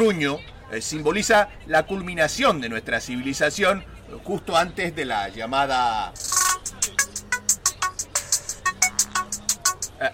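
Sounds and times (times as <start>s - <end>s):
speech: 0.0s - 7.6s, 10.0s - 10.1s
phone ringtone for an incoming call: 6.2s - 10.0s.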